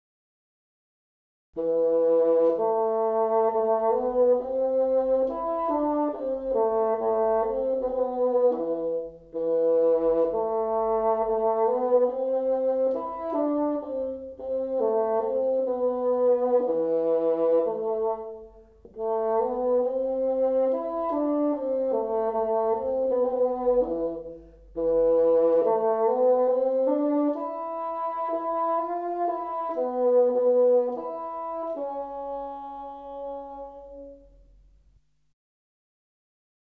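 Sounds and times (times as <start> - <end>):
bassoon: 1.6 - 34.9.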